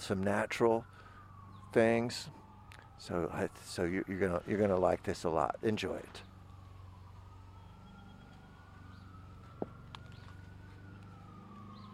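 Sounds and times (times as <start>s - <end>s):
police siren sound effect wailing: 0.0s - 11.9s
speech: 0.1s - 1.0s, 1.7s - 2.4s, 3.0s - 6.3s
distant lawn mower sound effect: 6.6s - 11.9s.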